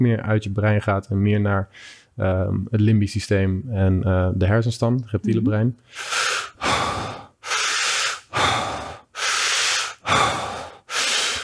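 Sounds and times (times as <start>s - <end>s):
speech: 0.0s - 6.8s
deep breathing through the mouth: 5.8s - 11.4s.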